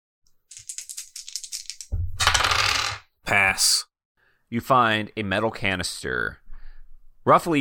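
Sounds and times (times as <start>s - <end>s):
dice clattering and tumbling across a table: 0.5s - 3.0s
speech: 3.3s - 3.9s, 4.5s - 6.4s, 7.2s - 7.6s.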